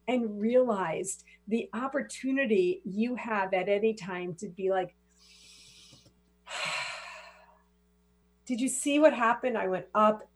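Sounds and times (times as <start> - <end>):
speech: 0.1 - 5.0, 8.5 - 10.3
soft breathy hiss: 5.0 - 7.7
deep breath in: 5.2 - 7.6.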